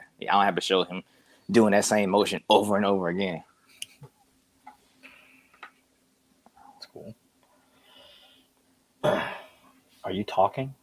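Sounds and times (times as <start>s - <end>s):
speech: 0.2s - 3.5s, 10.1s - 10.8s
harsh cough like a throat clear: 9.0s - 9.6s.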